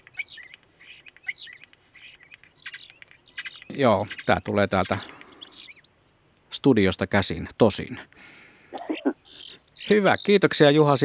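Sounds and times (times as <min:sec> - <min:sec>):
common starling singing: 0:00.0 - 0:06.0, 0:08.8 - 0:11.0
speech: 0:03.8 - 0:05.2, 0:06.6 - 0:08.1, 0:09.9 - 0:11.0.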